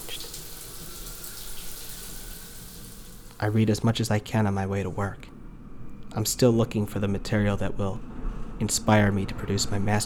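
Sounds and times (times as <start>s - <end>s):
shower water running: 0.0s - 3.8s
speech: 3.4s - 5.3s, 6.1s - 10.0s.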